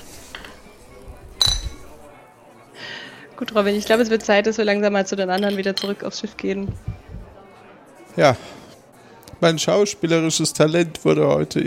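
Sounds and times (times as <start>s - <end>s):
faint murmuring voices: 0.0s - 11.6s
two glasses of rum clinking in a toast: 0.2s - 0.7s, 1.3s - 2.0s, 5.3s - 6.1s
speech: 3.4s - 7.0s, 8.2s - 8.6s, 9.4s - 11.6s.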